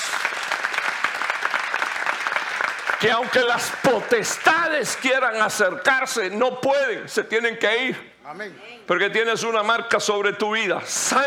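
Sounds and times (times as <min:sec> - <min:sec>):
audience applause: 0:00.0 - 0:05.4
speech: 0:03.0 - 0:11.2.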